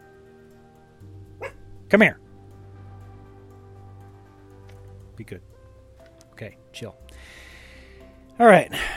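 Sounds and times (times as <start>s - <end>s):
low steady hum: 0.0s - 8.9s
dog barking: 1.4s - 1.7s
speech: 1.9s - 2.2s, 5.2s - 5.6s, 6.4s - 7.0s, 8.4s - 8.9s.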